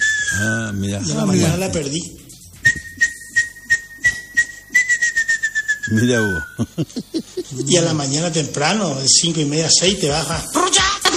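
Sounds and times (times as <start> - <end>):
person whistling to imitate a martineta tinamou call: 0.0 - 0.8, 2.6 - 6.7
speech: 0.3 - 2.3, 5.9 - 11.1
laughter: 6.6 - 8.1.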